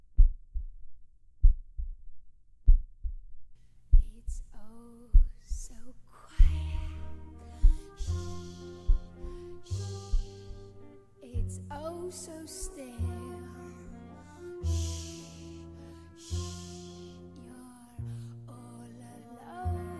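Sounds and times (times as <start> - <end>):
slow steady human heartbeat: 0.0 - 10.8, 11.4 - 11.8
tonal music: 6.3 - 19.9.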